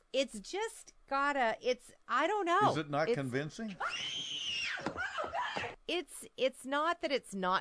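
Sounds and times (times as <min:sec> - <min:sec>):
speech: 0:00.1 - 0:05.0, 0:05.9 - 0:07.5
woman screaming in a film: 0:03.8 - 0:05.8.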